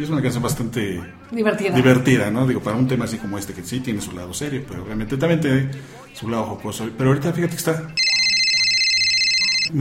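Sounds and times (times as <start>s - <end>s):
speech: 0.0s - 8.1s
electronic telephone ringing: 8.0s - 9.7s.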